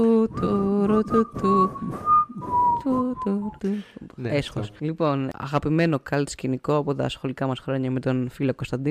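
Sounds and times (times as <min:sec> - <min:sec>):
speech: 0:00.0 - 0:02.2, 0:02.8 - 0:08.9
person whistling a short movie tune by mouth: 0:00.0 - 0:03.8.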